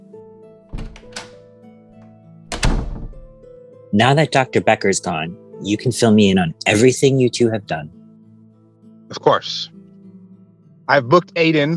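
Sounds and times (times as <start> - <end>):
door shutting with a solid thunk: 0.7 - 1.4, 2.5 - 3.4
speech: 3.9 - 8.0, 9.1 - 9.8, 10.9 - 11.7.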